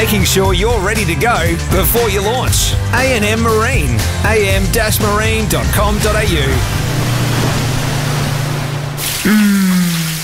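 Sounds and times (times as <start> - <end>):
speech: 0.0 - 7.6, 9.2 - 9.5
low hum: 0.0 - 9.7
shower water running: 5.3 - 10.2.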